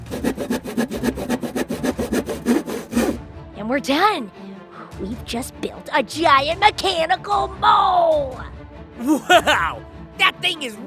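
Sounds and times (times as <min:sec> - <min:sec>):
handsaw cutting through wood in back-and-forth strokes: 0:00.0 - 0:03.2
speech: 0:03.7 - 0:04.4, 0:05.0 - 0:10.8
laughter: 0:09.0 - 0:09.8.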